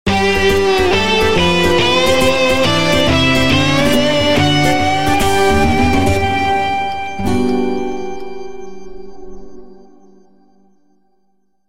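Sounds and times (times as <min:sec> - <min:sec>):
smooth rock music: 0:00.1 - 0:09.3.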